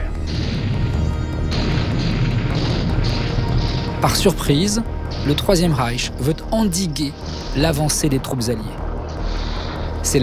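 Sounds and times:
German artillery fire in the December 1944 Ardennes counteroffensive: 0.2 - 5.4
speech: 4.0 - 8.8, 10.0 - 10.2.

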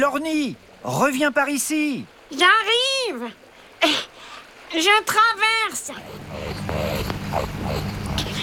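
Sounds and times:
speech: 0.0 - 4.1, 4.7 - 8.0
rakali Australian water rat growling: 5.8 - 8.4.

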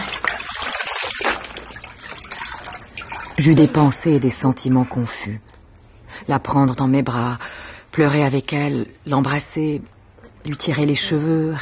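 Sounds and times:
water pouring and splashing while rinsing someone: 0.0 - 3.8
speech: 3.4 - 5.5, 6.3 - 11.6.

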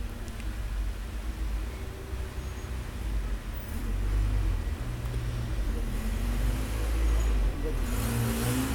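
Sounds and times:
steady street traffic: 0.0 - 8.7
vehicle engines passing: 0.0 - 8.7
heavier vehicle passing: 3.7 - 8.7.

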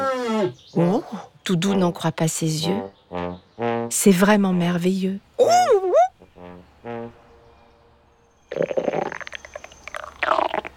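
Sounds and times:
speech: 0.4 - 5.6, 8.5 - 9.1
hungry stomach rumbling and gurgling: 8.5 - 10.7.

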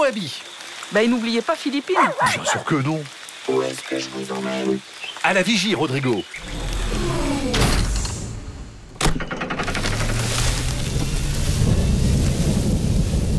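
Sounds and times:
steady rain hissing: 0.0 - 8.5, 9.7 - 13.3
speech: 0.1 - 6.7.

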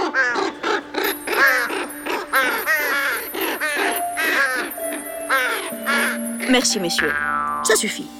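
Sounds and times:
chorus of crows cawing: 0.0 - 6.3
speech: 6.6 - 8.1.

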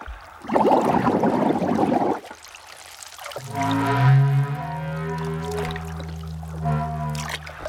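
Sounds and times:
rush of bubbling water: 0.0 - 7.6
blue whale's low moaning song: 3.4 - 7.6.

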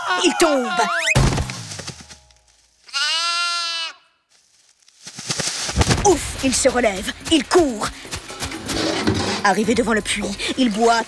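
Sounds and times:
speech: 0.2 - 1.2, 6.1 - 8.1, 9.4 - 11.0
faint rustling noise: 1.4 - 3.0, 4.3 - 10.9
sheep bleating: 2.9 - 4.2.

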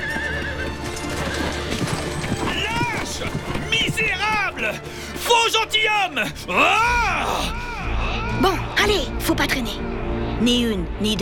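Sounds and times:
horse whinnying: 0.0 - 4.3
horse hooves clip-clopping: 0.0 - 5.2
speech: 5.6 - 7.6, 8.4 - 11.1.

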